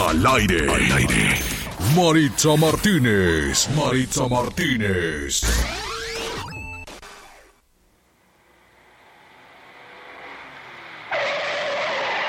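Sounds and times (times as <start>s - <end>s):
speech: 0.1s - 5.9s
engine and road noise roar: 8.1s - 12.2s
car tires screeching in a skid: 9.1s - 12.2s.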